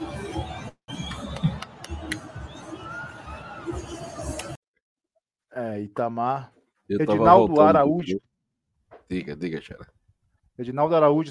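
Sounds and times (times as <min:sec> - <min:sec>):
football fans shouting and babbling: 0:00.0 - 0:04.6
speech: 0:05.8 - 0:08.3, 0:09.1 - 0:10.0, 0:10.6 - 0:11.2.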